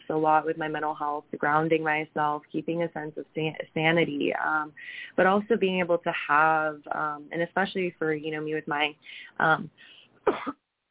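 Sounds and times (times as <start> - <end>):
speech: 0.1 - 10.6
person clearing throat after choking: 10.3 - 10.6.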